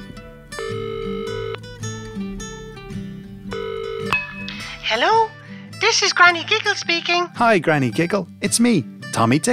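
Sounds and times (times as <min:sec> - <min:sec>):
telephone ringback tone on an outgoing call: 0:00.6 - 0:01.6, 0:03.5 - 0:05.2
speech: 0:04.9 - 0:09.5.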